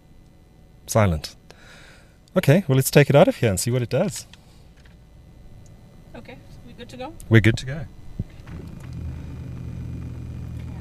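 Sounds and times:
speech: 0:00.9 - 0:01.4, 0:02.3 - 0:04.4, 0:06.2 - 0:08.6
automatic car switched on in a solar garage humming: 0:08.0 - 0:10.7.

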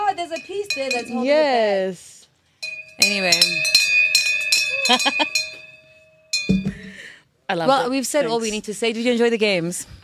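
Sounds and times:
bell ringing with lingering metallic tone: 0:00.0 - 0:01.4, 0:02.6 - 0:07.1
speech: 0:00.3 - 0:02.1, 0:03.0 - 0:03.8, 0:04.8 - 0:05.5, 0:07.5 - 0:10.0.

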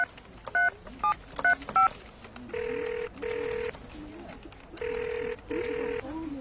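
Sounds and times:
telephone keypad dialing tones: 0:00.0 - 0:01.9, 0:02.5 - 0:03.8, 0:04.8 - 0:06.0.

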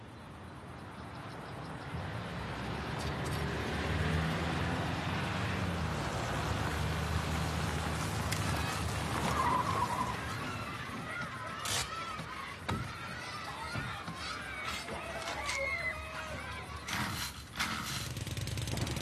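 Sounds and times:
cars passing close by a roadside: 0:00.4 - 0:18.9
children shouting and cheering amid a crowd: 0:07.6 - 0:17.8.

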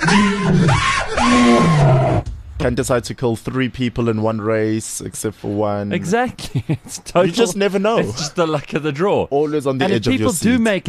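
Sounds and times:
human voice imitating a tiger roar: 0:00.0 - 0:02.2
speech: 0:02.6 - 0:10.8.

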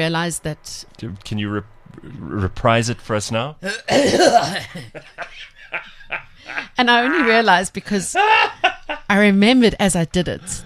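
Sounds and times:
speech: 0:00.0 - 0:10.6
exaggerated old man's cough: 0:03.6 - 0:04.9
laughter: 0:03.7 - 0:09.1.

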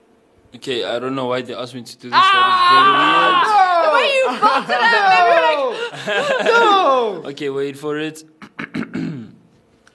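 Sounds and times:
speech: 0:00.5 - 0:08.4
laughter: 0:03.0 - 0:07.3
person clearing throat: 0:08.4 - 0:09.5.

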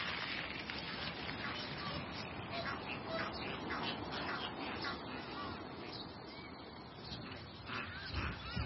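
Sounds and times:
waterbird calls on a wetland: 0:00.6 - 0:08.6
ducks quacking on a wetland: 0:00.9 - 0:06.1, 0:07.0 - 0:08.6.

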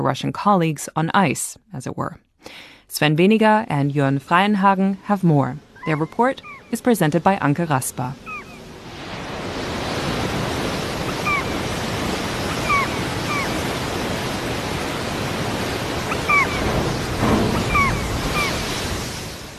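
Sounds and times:
speech: 0:00.0 - 0:08.3
short high seabird calls: 0:05.6 - 0:07.1, 0:07.8 - 0:08.8, 0:10.2 - 0:18.9
waves breaking and rushing against a ship's bow: 0:05.6 - 0:19.5.

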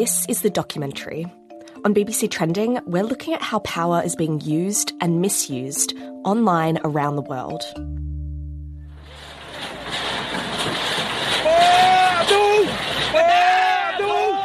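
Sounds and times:
speech: 0:00.0 - 0:08.0
low hum: 0:08.0 - 0:13.2
crowd of community members protesting against bulldozing of their longhouse in the Baram region: 0:09.1 - 0:14.4
people shouting with raised wavering voices: 0:11.4 - 0:14.4.

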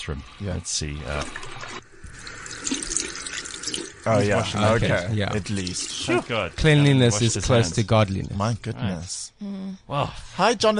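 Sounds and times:
speech: 0:00.0 - 0:01.8, 0:04.0 - 0:10.7
bathroom sink tap running as hands are washed: 0:00.0 - 0:08.5.

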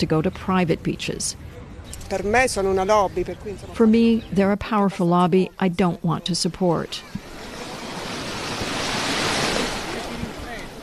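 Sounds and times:
speech: 0:00.0 - 0:07.2
surf washing onto a public beach: 0:07.2 - 0:10.8.

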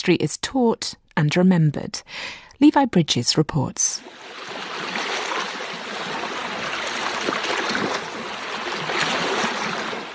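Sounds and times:
speech: 0:00.0 - 0:04.5
gentle waves lapping the shore of Issyk-Kul lake in northern Kyrgyzstan: 0:04.0 - 0:10.1.

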